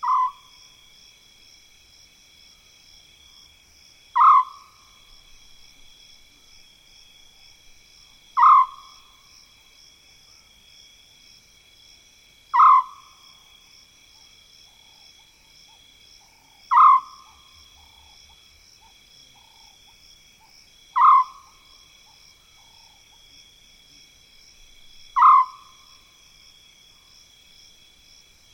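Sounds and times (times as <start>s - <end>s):
African scops owl purring call in mopane woodland: 0.0s - 0.5s, 4.2s - 4.8s, 8.4s - 9.1s, 12.5s - 13.2s, 16.6s - 19.8s, 20.9s - 23.0s, 25.1s - 25.9s
insects trilling high-pitched at night: 0.0s - 28.5s.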